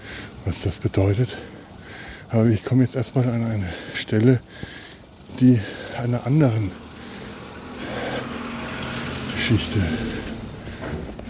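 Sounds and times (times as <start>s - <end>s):
speech: 0.5s - 1.6s, 2.3s - 4.7s, 5.4s - 6.8s, 9.5s - 10.3s
local resident's car engine driving past in a village: 6.7s - 11.2s.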